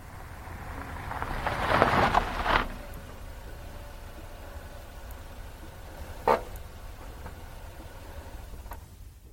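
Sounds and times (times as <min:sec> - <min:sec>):
car engine pulling up and idling at a storage warehouse: 0:00.0 - 0:09.3
short mechanical clunks: 0:02.8 - 0:09.0.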